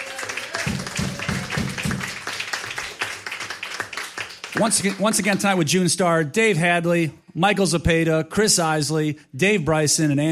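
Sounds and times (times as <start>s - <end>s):
audience clapping and applause: 0.0s - 5.5s
speech: 4.6s - 10.2s.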